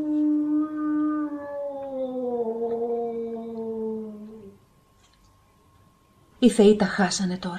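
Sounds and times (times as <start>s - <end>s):
wolf howling: 0.0s - 4.6s
faint hum: 0.0s - 7.5s
speech: 6.4s - 7.5s.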